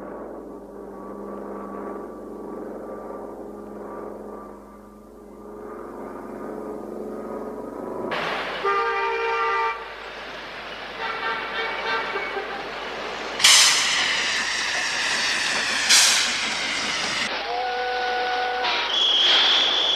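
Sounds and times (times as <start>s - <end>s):
train mechanical rumble: 0.0s - 8.7s, 9.8s - 17.4s
train horn tooting: 8.6s - 9.9s, 11.0s - 12.7s, 17.3s - 19.4s
train steam hissing: 9.9s - 17.8s.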